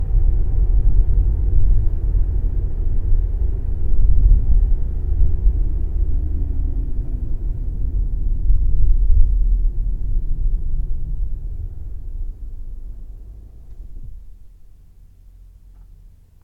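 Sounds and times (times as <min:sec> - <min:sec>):
vehicle stopping to drive: 0:00.0 - 0:16.4.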